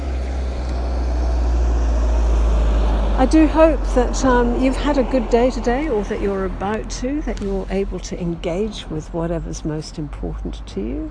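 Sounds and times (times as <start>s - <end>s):
heavy truck engine rumble driving past outside: 0.0s - 11.1s
road noise: 0.0s - 11.1s
speech: 3.2s - 11.1s.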